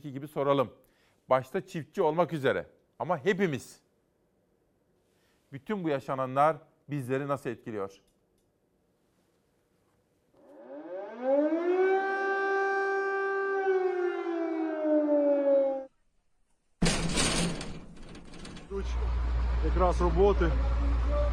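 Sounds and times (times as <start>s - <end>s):
speech: 0.0s - 3.8s, 5.5s - 8.1s, 18.8s - 20.7s
air raid siren wailing with rich harmonics: 10.4s - 15.9s, 18.8s - 21.3s
noisy clattering: 16.8s - 19.3s.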